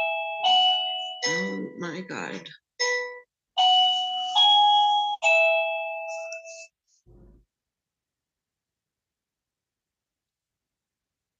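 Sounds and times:
doorbell chiming a melodic run: 0.0 - 6.7
speech: 1.3 - 2.6.

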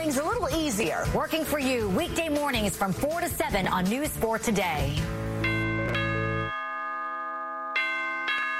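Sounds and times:
speech: 0.1 - 5.2
doorbell chiming ding-dong: 5.4 - 8.5.

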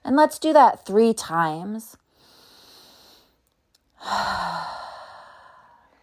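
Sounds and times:
speech: 0.1 - 2.0, 4.0 - 4.8
deep breathing, inhaling through nose and exhaling through mouth during a guided breathing exercise: 2.1 - 3.4, 4.0 - 6.0.

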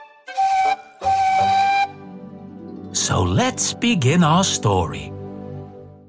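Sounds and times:
steam engine whistle blowing: 0.0 - 2.1
speech: 3.0 - 5.2.

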